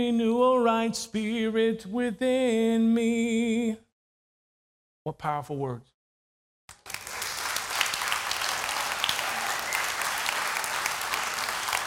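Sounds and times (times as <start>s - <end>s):
speech: 0.0s - 3.9s, 5.0s - 5.9s
crowd applauding: 6.7s - 11.8s.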